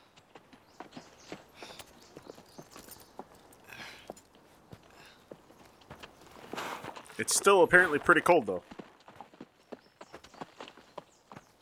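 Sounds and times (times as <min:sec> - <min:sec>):
horse hooves clip-clopping in a walking rhythm: 0:00.0 - 0:11.6
speech: 0:07.2 - 0:08.8.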